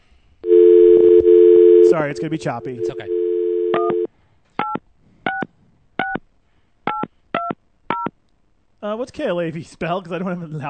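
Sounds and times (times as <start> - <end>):
telephone dial tone: 0.4 - 2.0, 2.6 - 4.1
speech: 2.1 - 4.2, 8.8 - 10.6.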